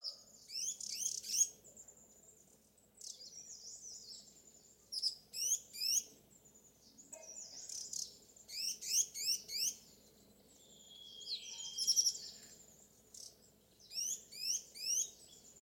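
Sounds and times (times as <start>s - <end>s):
Striated yuhina twittering calls: 0.0s - 1.6s, 4.9s - 6.1s, 7.1s - 9.8s, 10.6s - 15.5s.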